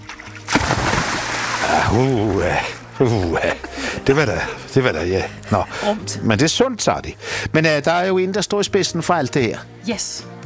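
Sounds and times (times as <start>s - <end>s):
cannonball jump splashing into the sea at Klippeøen: 0.4s - 2.8s
speech: 1.9s - 10.4s.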